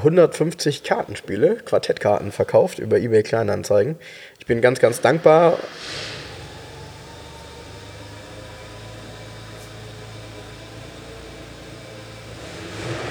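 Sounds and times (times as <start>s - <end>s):
speech: 0.0s - 6.2s
broadband road noise: 4.5s - 13.0s
car engine rumbling as the car drives up: 4.5s - 13.0s.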